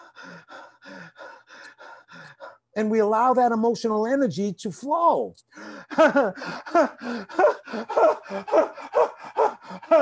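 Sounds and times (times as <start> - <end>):
person breathing in and out through a relaxed open throat with gasping sighing quality: 0.0 - 2.7, 5.5 - 9.9
speech: 2.8 - 9.2.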